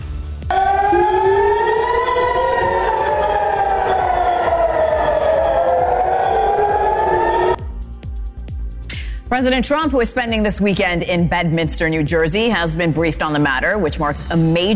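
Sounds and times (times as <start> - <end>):
air raid sirens wailing across Israel after Iranian ballistic missile launch: 0.5 - 7.8
speech: 9.3 - 14.7.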